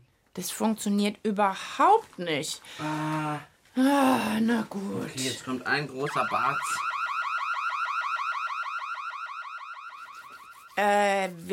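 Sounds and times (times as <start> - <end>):
speech: 0.4 - 6.9, 10.8 - 11.5
loud electronic alarm warbling: 5.7 - 11.1.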